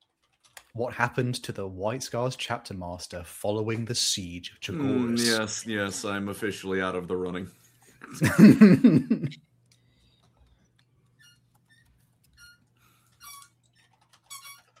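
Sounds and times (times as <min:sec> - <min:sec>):
speech: 0:00.8 - 0:09.5
laughter: 0:08.0 - 0:09.4
dog squeaking a squeaky toy: 0:13.2 - 0:14.7.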